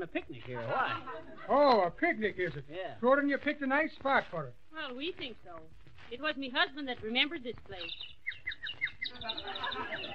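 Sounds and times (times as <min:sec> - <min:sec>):
speech: 0:00.0 - 0:10.1
laughter: 0:00.5 - 0:01.8, 0:09.1 - 0:10.1
sparrow chirping: 0:06.2 - 0:10.1.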